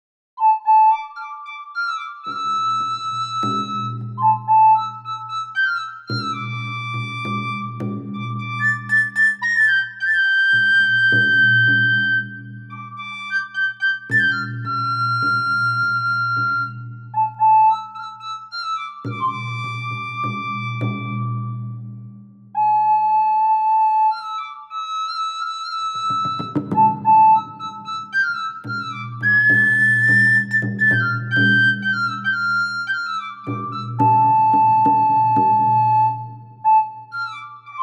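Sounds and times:
medieval whistle melody: 0.4 - 37.8.

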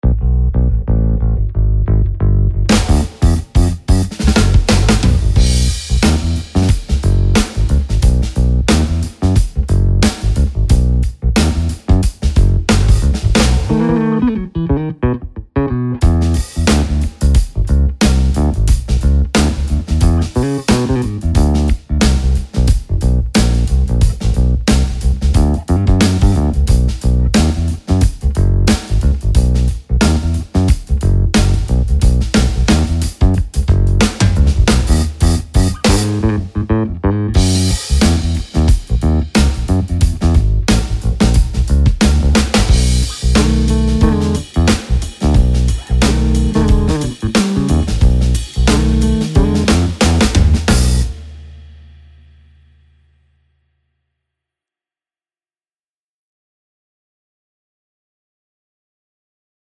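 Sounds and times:
classic finger-played bass: 0.0 - 51.6.

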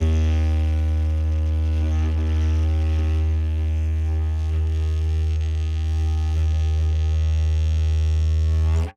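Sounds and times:
elongated organic didgeridoo drone: 0.0 - 8.9.

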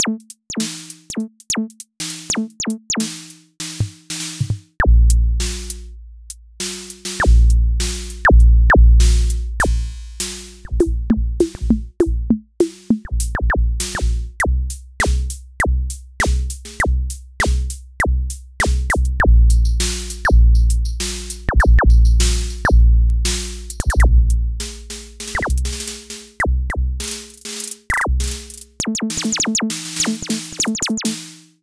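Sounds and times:
drum module: 0.0 - 5.8, 6.7 - 31.5.

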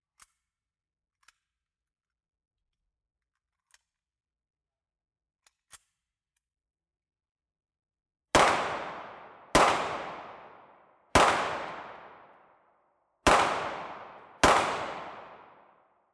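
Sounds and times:
9mm pistol loading: 8.4 - 10.6, 11.2 - 12.2, 13.3 - 15.6
9mm pistol cocking: 8.4 - 12.3, 13.3 - 15.7.

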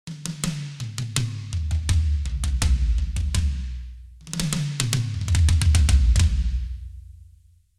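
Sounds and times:
tom drums: 0.1 - 7.2.

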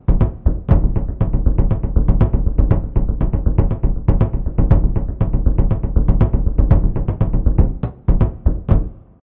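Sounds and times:
muted Brazilian surdo drum: 0.0 - 9.0.

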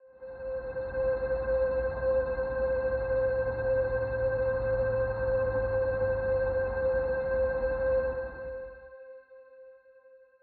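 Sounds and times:
aetheric solo synth pad: 0.4 - 8.7.

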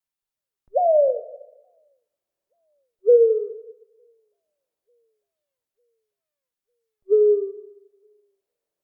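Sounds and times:
owl calling with wavering drawn-out hoot: 0.7 - 1.8, 3.0 - 3.8, 7.1 - 7.8.

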